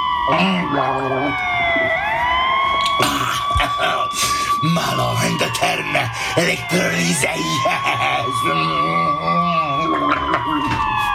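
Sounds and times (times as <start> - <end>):
emergency vehicle sirens passing a petrol station: 0.0 - 11.1
speech: 0.3 - 2.0, 3.0 - 11.1
laughter: 3.0 - 4.5, 7.0 - 8.6, 9.8 - 10.8.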